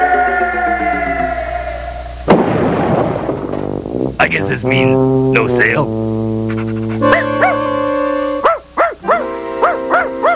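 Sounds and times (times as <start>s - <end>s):
steady sustained tonal background: 0.0s - 2.4s, 3.2s - 10.3s
speech: 4.2s - 6.1s
dog giving short high yipping barks: 7.0s - 7.7s, 8.4s - 10.3s.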